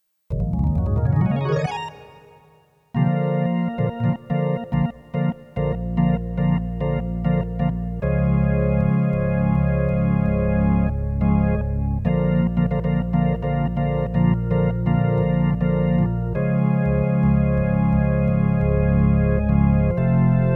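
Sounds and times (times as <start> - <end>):
organ prelude: 0.3 - 20.5.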